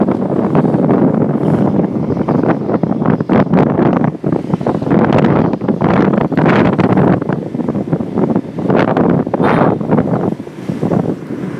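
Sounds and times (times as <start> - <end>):
wind: 0.0 - 11.5.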